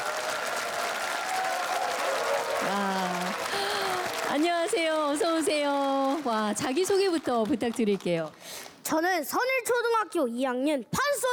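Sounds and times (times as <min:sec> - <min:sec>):
audience applause welcoming a child performer: 0:00.0 - 0:08.5
speech: 0:04.4 - 0:11.1.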